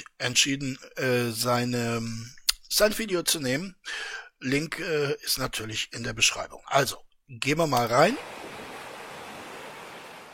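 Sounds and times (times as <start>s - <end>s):
speech: 0.2s - 8.4s
sea surf washing in: 8.1s - 10.3s.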